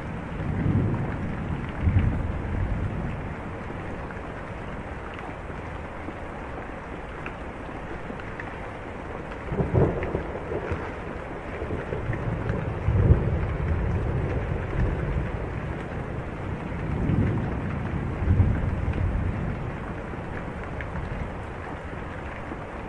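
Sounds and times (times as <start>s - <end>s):
low rumbles of thunder: 0.0s - 4.1s, 9.5s - 21.9s
heavy rain falling steadily on a porch: 0.0s - 22.8s
water drips and taps: 3.1s - 22.8s.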